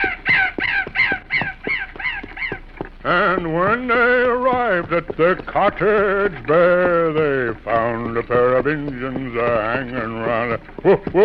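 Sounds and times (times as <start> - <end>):
raven cawing with harsh raspy calls: 0.0 - 2.7
speech: 3.1 - 11.2.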